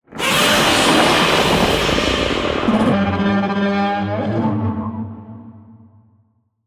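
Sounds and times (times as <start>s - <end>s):
monster roar: 0.1s - 4.4s.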